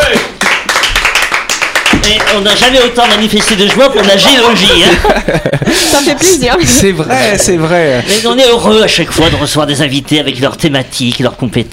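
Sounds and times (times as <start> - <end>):
small group of people clapping hands in a studio: 0.0 - 5.1
speech: 2.1 - 11.7
laughter: 3.8 - 8.4.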